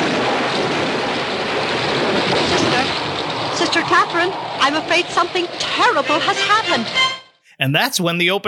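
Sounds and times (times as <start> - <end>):
heavy rain pouring outside during a thunderstorm: 0.0 - 7.0
speech: 4.0 - 8.4.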